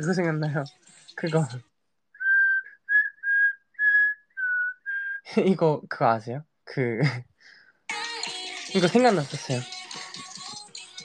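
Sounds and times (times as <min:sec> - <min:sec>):
speech: 0:00.0 - 0:01.7, 0:05.3 - 0:07.3, 0:08.7 - 0:09.8
person whistling a tune: 0:02.2 - 0:05.3.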